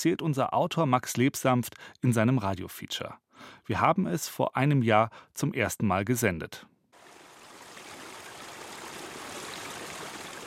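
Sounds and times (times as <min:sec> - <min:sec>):
speech: 0:00.0 - 0:06.7
rushing mountain stream: 0:07.0 - 0:10.4.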